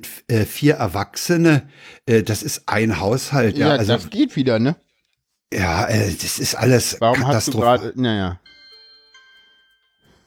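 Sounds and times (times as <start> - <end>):
speech: 0.0 - 4.8, 5.5 - 8.5
mobile phone ringing with a bright electronic ringtone: 8.4 - 10.2.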